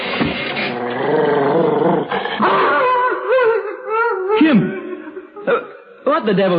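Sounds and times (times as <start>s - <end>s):
dog growling and snarling in protest: 0.5s - 2.6s
laughter: 2.3s - 5.6s
speech: 6.2s - 6.5s.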